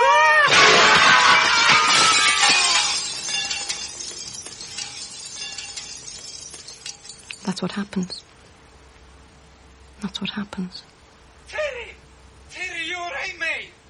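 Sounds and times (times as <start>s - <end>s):
pane of glass falling and shattering: 0.5s - 8.1s
speech: 7.6s - 8.4s, 10.0s - 11.6s.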